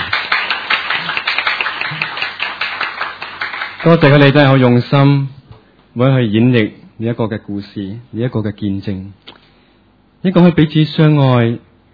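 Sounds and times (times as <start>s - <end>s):
audience applause for performers: 0.0s - 4.6s
speech: 3.8s - 5.4s, 6.0s - 9.2s, 10.2s - 11.7s.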